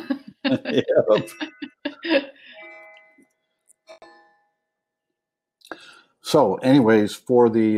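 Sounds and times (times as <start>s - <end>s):
laughter: 0.0s - 2.4s
clock bell chiming the hour: 0.0s - 3.3s
speech: 0.4s - 2.3s, 6.3s - 7.7s.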